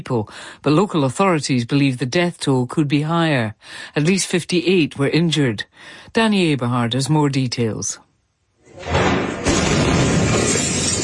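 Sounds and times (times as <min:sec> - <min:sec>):
speech: 0:00.0 - 0:08.1
windows shattering with debris: 0:08.7 - 0:11.0
explosion of pyrotechnic material at a military barracks: 0:08.8 - 0:11.0.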